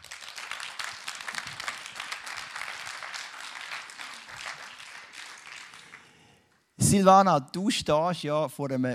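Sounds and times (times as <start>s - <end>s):
audience clapping: 0.0s - 6.5s
speech: 6.9s - 8.9s.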